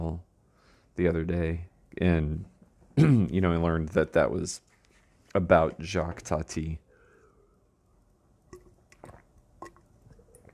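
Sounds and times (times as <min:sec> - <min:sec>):
speech: 0:01.0 - 0:04.7, 0:05.3 - 0:06.8
person gulping water: 0:08.5 - 0:10.5
swallowing clicks: 0:08.5 - 0:10.5.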